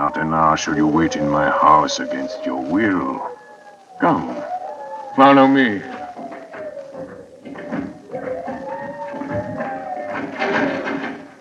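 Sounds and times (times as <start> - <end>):
speech: 0.0 - 3.4, 4.0 - 4.5, 5.2 - 6.0
long wavering tones droning: 0.0 - 11.3
heavy bolted locked door tugged and rattled: 0.7 - 11.3
dull knocks: 3.3 - 11.3
scraping clatter: 5.9 - 11.3.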